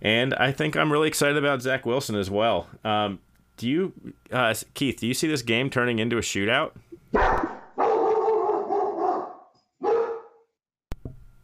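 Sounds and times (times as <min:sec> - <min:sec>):
speech: 0:00.0 - 0:07.4
dog barking: 0:07.2 - 0:10.4.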